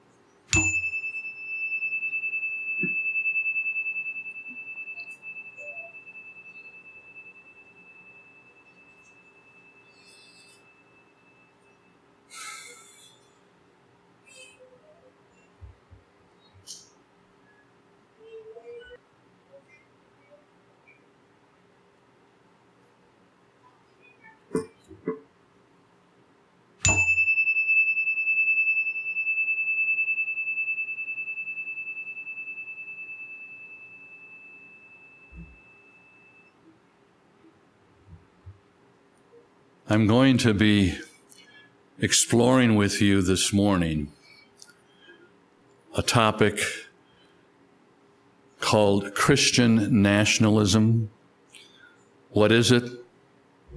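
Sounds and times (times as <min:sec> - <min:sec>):
meditation chime ringing: 0:00.5 - 0:12.0, 0:26.8 - 0:36.7
speech: 0:39.9 - 0:41.0, 0:42.0 - 0:44.2, 0:46.0 - 0:46.8, 0:48.7 - 0:51.2, 0:52.4 - 0:53.0.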